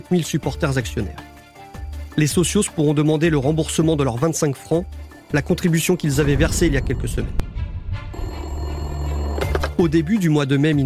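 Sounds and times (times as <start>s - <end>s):
speech: 0.0s - 1.3s, 2.2s - 7.4s, 9.8s - 10.8s
old telephone bell ringing in a football club president's office: 8.1s - 9.9s.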